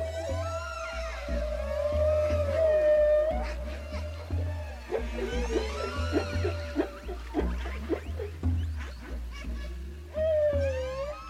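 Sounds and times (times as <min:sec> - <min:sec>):
low rumble of deep water: 0:00.0 - 0:11.2
whale song moans and whistles: 0:00.0 - 0:11.2.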